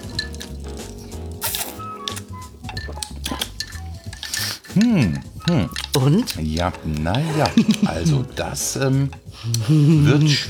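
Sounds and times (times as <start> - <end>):
teaspoon clinking against a glass: 0.0 - 9.6
speech: 4.8 - 10.4.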